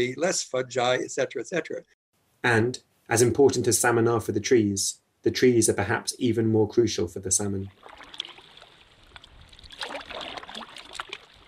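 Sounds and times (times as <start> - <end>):
speech: 0.0 - 8.1
boat paddles dipping and splashing into the River Dee: 7.7 - 11.4.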